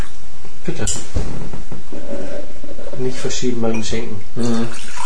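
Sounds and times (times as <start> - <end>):
speech: 0.7 - 2.3, 3.0 - 4.9
faint squeaky scraping of squeegee: 1.9 - 3.3.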